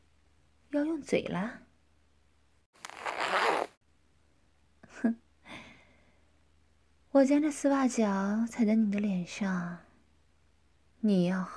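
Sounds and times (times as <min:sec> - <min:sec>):
speech: 0:00.7 - 0:01.6, 0:05.0 - 0:05.2, 0:07.1 - 0:09.9, 0:11.0 - 0:11.5
boot zipper being pulled down: 0:02.8 - 0:03.8.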